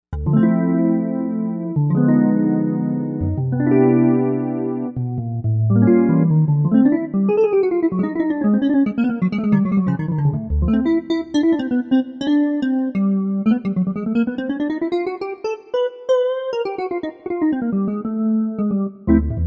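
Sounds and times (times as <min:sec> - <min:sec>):
Novation UltraNova synth jazz guitar: 0:00.1 - 0:19.4.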